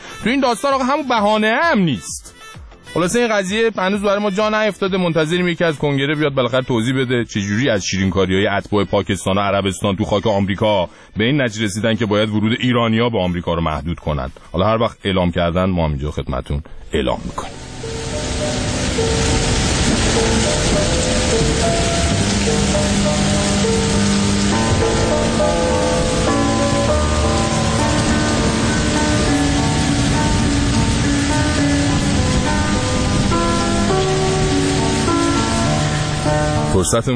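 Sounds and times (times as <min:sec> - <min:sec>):
speech: 0:00.2 - 0:02.2, 0:02.9 - 0:18.2, 0:36.7 - 0:37.1
soft sustained musical tones: 0:17.4 - 0:37.0
steady dense rain pouring onto a surface: 0:17.5 - 0:36.7.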